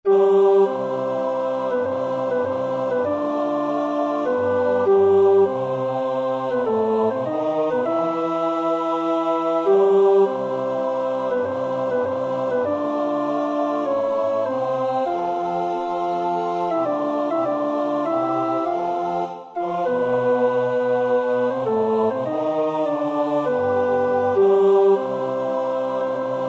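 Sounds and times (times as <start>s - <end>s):
tenor voice singing a choir part for practice: 0.1s - 26.4s.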